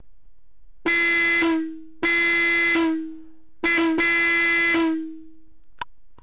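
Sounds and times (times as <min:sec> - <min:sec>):
12V 320Hz 110dB disc car horn 130mm: 0:00.9 - 0:05.4.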